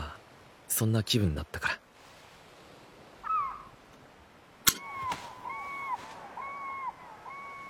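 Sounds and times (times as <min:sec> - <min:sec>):
steady outdoor hiss: 0:00.0 - 0:07.6
speech: 0:00.8 - 0:01.8
several seagulls calling with mewing cries: 0:03.1 - 0:03.8, 0:04.7 - 0:07.6.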